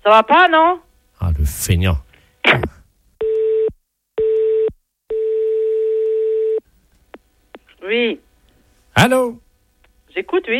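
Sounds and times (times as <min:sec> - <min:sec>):
speech: 0:00.0 - 0:02.8, 0:07.8 - 0:08.2, 0:09.0 - 0:09.4, 0:10.2 - 0:10.5
telephone ringing unanswered on the line: 0:03.2 - 0:06.6.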